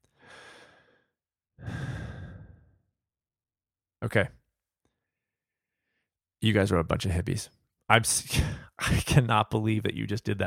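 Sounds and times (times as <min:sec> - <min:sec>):
deep breath in and out: 0:00.0 - 0:02.9
speech: 0:04.0 - 0:04.4, 0:06.4 - 0:10.4.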